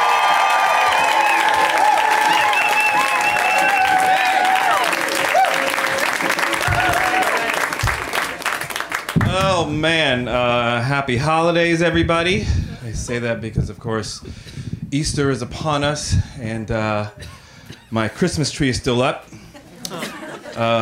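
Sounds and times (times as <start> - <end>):
audience whoops and cheers: 0.0 - 7.9
audience applause welcoming a comic: 0.0 - 9.7
speech: 9.7 - 19.4, 20.6 - 20.7
laughter: 19.3 - 20.7.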